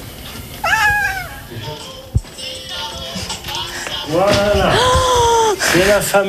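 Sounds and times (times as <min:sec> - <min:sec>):
cat meowing: 0:00.6 - 0:01.6
speech: 0:04.1 - 0:04.9, 0:05.8 - 0:06.2.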